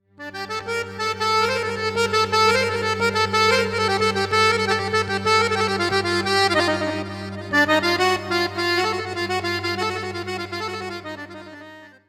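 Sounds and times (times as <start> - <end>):
accordion: 0.1 - 12.0.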